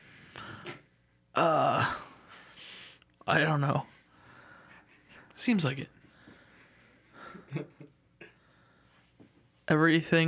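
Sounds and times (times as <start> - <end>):
person groaning as if waking up hurt: 1.4 - 2.2
speech: 3.3 - 3.9, 5.4 - 6.0, 9.7 - 10.2.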